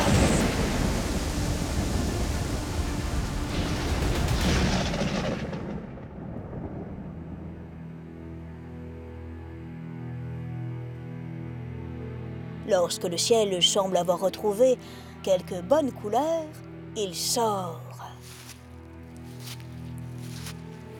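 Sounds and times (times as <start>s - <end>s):
dense broadband rain in a heavy thunderstorm: 0.0s - 8.0s
thunder rumbling in a heavy thunderstorm: 0.0s - 8.1s
speech: 12.7s - 18.2s.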